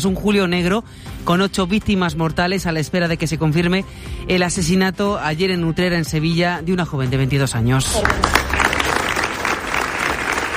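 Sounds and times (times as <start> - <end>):
speech: 0.0 - 8.6
crowd applause at a morning protest rally: 7.9 - 10.5.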